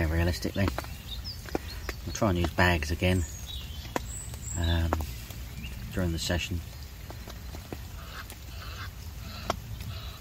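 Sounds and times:
speech: 0:00.3 - 0:00.9, 0:02.1 - 0:03.4, 0:04.6 - 0:05.0, 0:06.0 - 0:06.7
Egyptian geese honking: 0:07.8 - 0:10.2.

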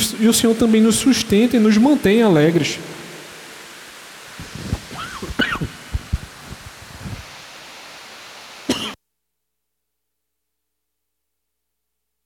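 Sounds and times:
steady hissing noise: 0:00.0 - 0:09.0
speech: 0:00.2 - 0:03.0
person coughing: 0:05.0 - 0:05.8, 0:08.7 - 0:09.0
throat clearing: 0:05.0 - 0:05.8, 0:08.7 - 0:09.0.

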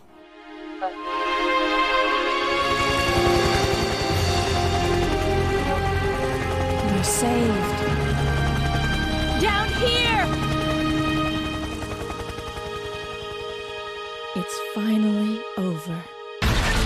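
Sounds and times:
dense sustained dramatic video game score: 0:00.0 - 0:16.8
speech: 0:00.8 - 0:01.3
helicopter rotor thumping in a video game cutscene: 0:02.7 - 0:13.6.

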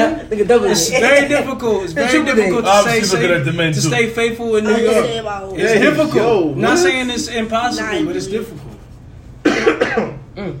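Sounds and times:
speech: 0:00.0 - 0:08.7
person coughing from smoke: 0:09.4 - 0:10.5.

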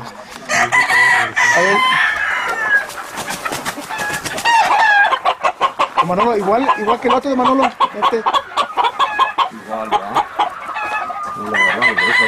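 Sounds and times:
chickens clucking and squawking: 0:00.0 - 0:12.2
speech: 0:01.6 - 0:02.0, 0:06.1 - 0:08.4, 0:09.7 - 0:10.2, 0:11.4 - 0:12.2.

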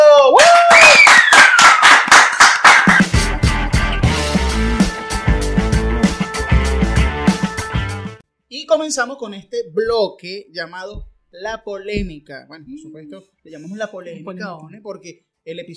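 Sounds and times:
audience applause with quick rhythmic clapping: 0:00.4 - 0:03.1
upbeat music: 0:02.6 - 0:08.2
speech: 0:09.0 - 0:15.7.

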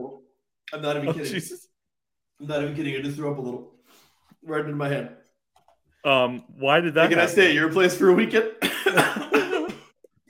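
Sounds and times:
speech: 0:00.7 - 0:01.7, 0:02.4 - 0:03.8, 0:04.4 - 0:05.2, 0:06.0 - 0:09.2
person coughing after laughing hard: 0:08.6 - 0:09.9.

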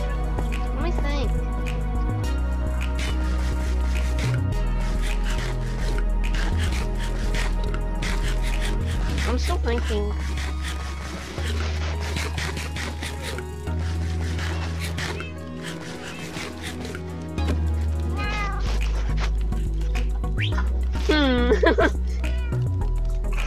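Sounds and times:
steady low droning background: 0:00.0 - 0:23.4
speech: 0:09.6 - 0:10.3
cat meowing: 0:18.1 - 0:18.8, 0:22.2 - 0:22.7
laughter: 0:21.1 - 0:22.2.

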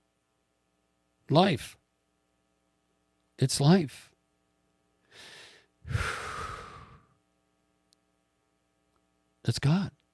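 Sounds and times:
speech: 0:01.3 - 0:01.8, 0:03.4 - 0:04.1, 0:05.9 - 0:06.2, 0:09.5 - 0:10.0
deep breathing: 0:05.1 - 0:07.2.

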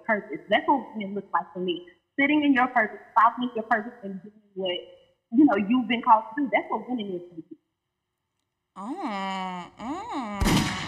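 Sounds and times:
speech: 0:00.1 - 0:07.6, 0:08.8 - 0:10.8
drawn-out vocal wail rising and falling in pitch: 0:08.8 - 0:10.7
loud gunshot sound effect: 0:10.4 - 0:10.8.

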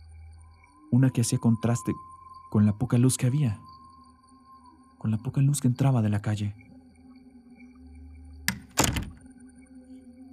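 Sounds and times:
speech: 0:00.9 - 0:03.8, 0:05.0 - 0:06.7
bedroom door creak-like scrape: 0:08.5 - 0:09.2.

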